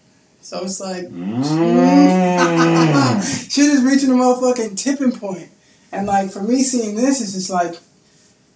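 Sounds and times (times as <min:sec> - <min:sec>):
speech: 0:00.4 - 0:07.9
cow mooing: 0:01.1 - 0:03.4
laughter: 0:02.1 - 0:03.5.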